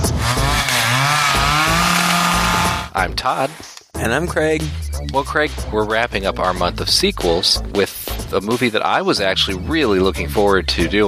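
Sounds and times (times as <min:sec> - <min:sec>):
chainsaw engine revving: 0:00.0 - 0:02.9
speech: 0:03.0 - 0:11.0.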